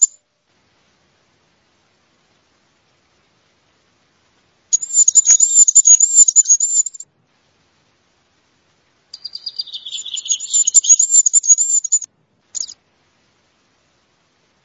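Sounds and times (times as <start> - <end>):
male goldcrest singing very high thin rhythmic notes: 4.8 - 7.0, 9.2 - 12.8.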